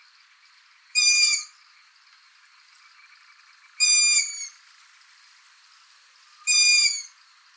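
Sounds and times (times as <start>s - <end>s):
Long-eared Owl Asio otus giving harsh squealing calls: 1.0s - 1.5s, 3.8s - 4.6s, 6.4s - 7.2s.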